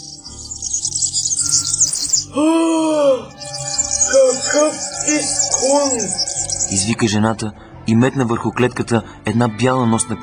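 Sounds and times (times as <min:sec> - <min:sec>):
canary chirping in a quivering trill: 0:00.0 - 0:02.3, 0:03.4 - 0:07.4
speech: 0:02.3 - 0:03.4, 0:04.4 - 0:10.2
low steady hum: 0:03.3 - 0:08.2.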